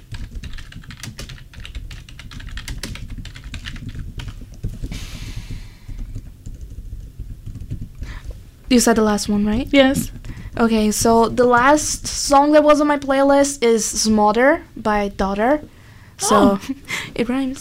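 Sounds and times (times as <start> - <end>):
rapid typing on a computer keyboard: 0.0 - 8.4
speech: 8.7 - 17.5.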